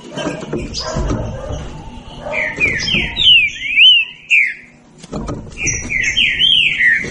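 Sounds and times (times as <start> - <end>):
green-winged saltator whistling song: 2.4 - 4.7, 5.6 - 7.0.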